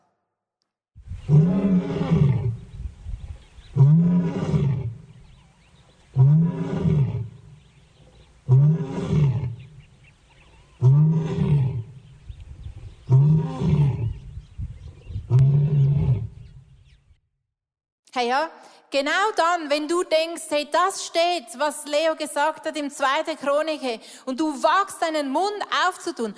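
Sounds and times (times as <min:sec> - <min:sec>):
lion roaring: 0:01.2 - 0:02.6, 0:03.7 - 0:09.9, 0:10.7 - 0:12.0, 0:13.0 - 0:14.2, 0:15.3 - 0:16.4
speech: 0:18.2 - 0:26.3.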